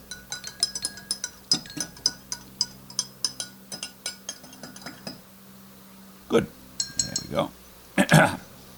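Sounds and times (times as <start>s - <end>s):
spoon stirring and clinking in a glass: 0.0s - 5.2s, 6.8s - 7.4s
speech: 6.4s - 6.6s, 7.3s - 7.6s.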